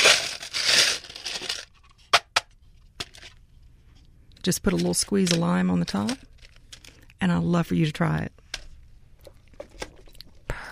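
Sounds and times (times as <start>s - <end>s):
crushed ice crunching and scraping into a glass: 0.0s - 1.7s
speech: 4.4s - 6.3s, 7.2s - 8.4s.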